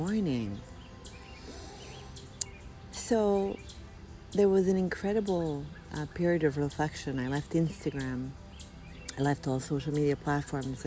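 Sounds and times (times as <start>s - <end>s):
speech: 0.0s - 0.7s, 3.1s - 3.7s, 4.3s - 8.4s, 9.2s - 10.8s
bird chirping: 0.0s - 10.8s
quiet steady outdoor background: 0.0s - 10.8s.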